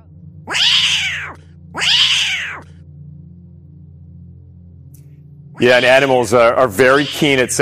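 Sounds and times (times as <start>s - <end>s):
low steady hum: 0.0s - 7.6s
frightened cat meowing: 0.5s - 2.7s, 6.8s - 7.5s
speech: 5.6s - 7.6s.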